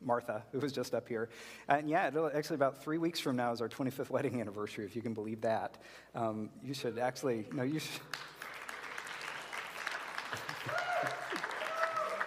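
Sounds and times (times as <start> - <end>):
speech: 0.1 - 8.4
large audience applause: 8.1 - 12.2
faint cheers: 10.5 - 12.2.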